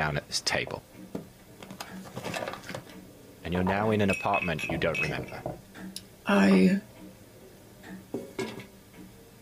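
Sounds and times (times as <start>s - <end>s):
speech: 0.0s - 1.0s, 3.5s - 5.5s, 6.3s - 6.9s
ceramic tea set dishes clinking as they are set down: 3.7s - 5.6s.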